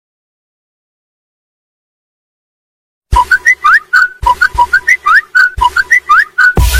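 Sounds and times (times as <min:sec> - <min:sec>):
Samsung Galaxy M51 original ringtone: 0:03.3 - 0:06.6.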